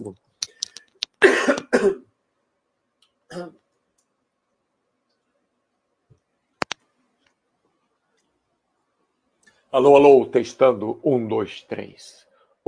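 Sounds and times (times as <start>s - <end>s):
speech: 0.0s - 0.2s, 3.4s - 3.6s, 9.8s - 12.6s
small clicks and taps: 0.2s - 1.2s, 6.1s - 7.4s
harsh coughs: 1.2s - 2.1s.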